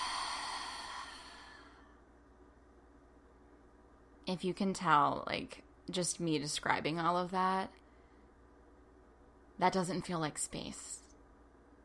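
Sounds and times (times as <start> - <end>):
person breathing in and exhaling deeply during a calming exercise: 0.0 - 2.0
speech: 4.3 - 7.8, 9.6 - 11.0.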